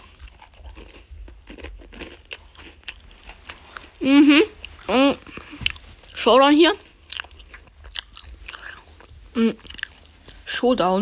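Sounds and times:
crunchy chocolate cookies being chewed: 0.0 - 10.5
speech: 4.0 - 5.0, 6.2 - 6.8, 9.4 - 9.7, 10.6 - 11.0.

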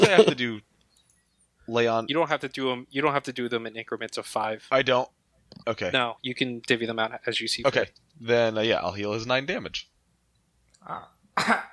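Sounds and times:
speech: 0.1 - 0.7, 1.7 - 9.9, 10.8 - 11.7
person coughing: 10.9 - 11.7.

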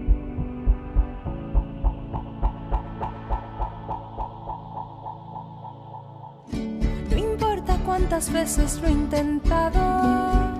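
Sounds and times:
heartbeat thumps: 0.0 - 5.7
humming musical drone: 0.0 - 7.5
speech: 8.0 - 10.4.

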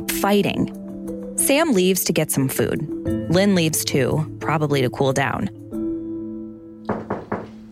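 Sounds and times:
speech: 0.1 - 0.8, 1.4 - 5.6
firm knocks on a door: 6.8 - 7.6.

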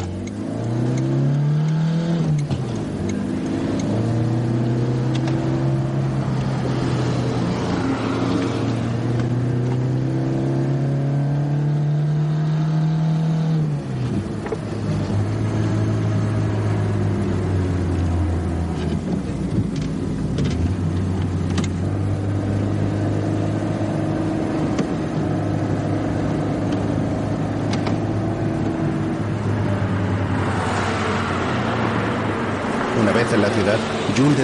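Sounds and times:
car engine droning while driving along a road: 0.0 - 34.4.

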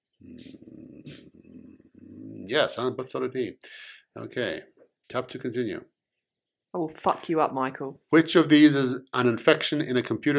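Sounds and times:
dog growling loudly: 0.1 - 2.8
speech: 2.5 - 5.9, 6.7 - 10.3.

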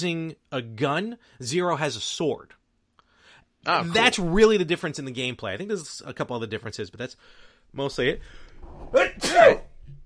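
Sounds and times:
speech: 0.0 - 2.6, 3.6 - 9.6
loud sneeze: 8.9 - 9.8.

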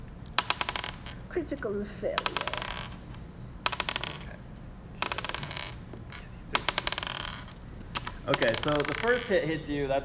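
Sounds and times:
dice rolled for damage in a tabletop role-playing game: 0.4 - 1.2, 2.2 - 3.0, 3.7 - 4.2, 5.0 - 5.8, 6.6 - 9.4
speech: 1.3 - 2.6, 8.3 - 10.0.

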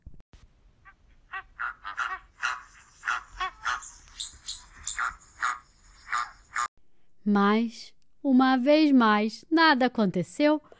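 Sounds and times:
flamingo squawking loudly: 0.8 - 6.7
speech: 7.3 - 10.7.

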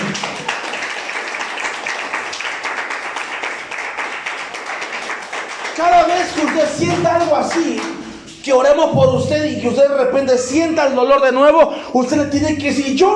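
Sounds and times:
large crowd applauding: 0.0 - 8.0
speech: 6.3 - 13.1.

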